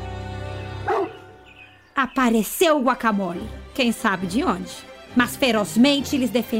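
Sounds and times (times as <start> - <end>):
angry dog barking: 0.8 - 1.3
speech: 2.0 - 6.5.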